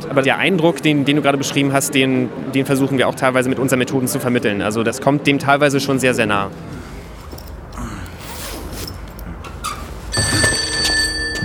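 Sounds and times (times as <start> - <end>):
speech: 0.1 - 6.9
soft rustling and shuffling: 6.5 - 11.2
loud telephone bell ringing: 10.1 - 11.4.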